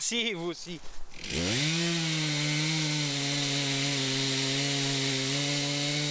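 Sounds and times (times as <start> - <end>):
speech: 0.0 - 2.0
chainsaw engine revving while cutting wood: 1.2 - 6.0.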